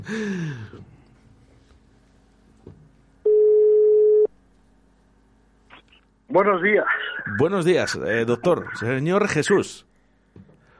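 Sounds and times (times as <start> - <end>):
speech: 0.0 - 0.9, 6.3 - 9.9
telephone ringing tone from a call being placed: 3.3 - 4.3.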